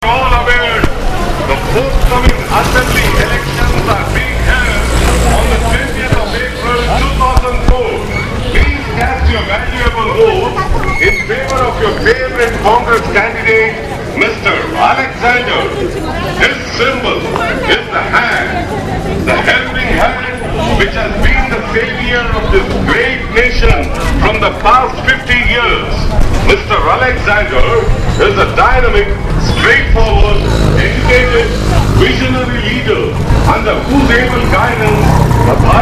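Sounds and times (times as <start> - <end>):
election campaign sounds in India: 0.0 - 35.7.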